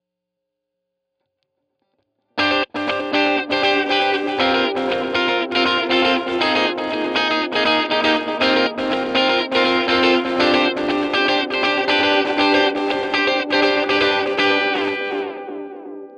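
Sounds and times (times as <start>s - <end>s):
saturated tape echo repeats: 2.4s - 16.1s.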